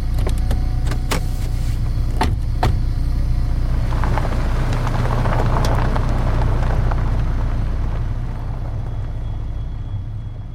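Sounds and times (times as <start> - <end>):
car door and seat clicks and clunks: 0.0 - 3.0
car engine rumbling as vehicle pulls away and drives: 0.0 - 10.5.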